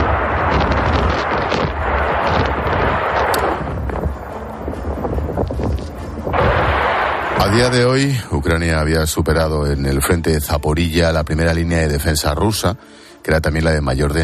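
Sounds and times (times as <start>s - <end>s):
bombs and missiles exploding in war: 0.0s - 4.2s, 5.6s - 8.5s
speech: 7.5s - 14.2s.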